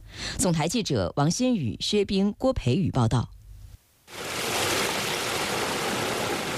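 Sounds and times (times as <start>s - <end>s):
speech: 0.4s - 3.4s
river water rushing through an opened sluice gate: 4.1s - 6.5s.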